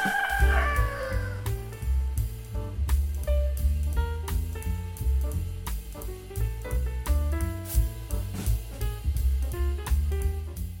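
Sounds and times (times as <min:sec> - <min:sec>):
rooster crowing: 0:00.0 - 0:01.5
upbeat instrumental track with bouncy rhythm: 0:00.0 - 0:10.7.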